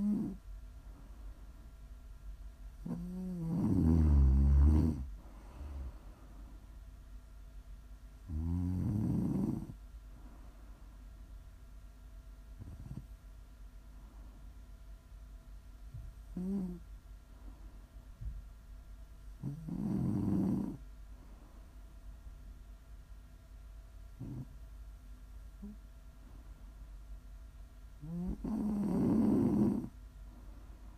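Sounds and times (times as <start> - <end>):
person snoring with deep rumbling snores: 0.0 - 0.4, 2.8 - 6.0, 8.3 - 9.8, 16.4 - 16.8, 19.4 - 20.8, 28.0 - 29.9
soft breaths between snores: 0.0 - 1.8, 4.9 - 7.0, 9.3 - 11.4, 12.6 - 22.2, 25.3 - 27.3, 28.0 - 30.9
quiet steady low hum: 0.0 - 30.9.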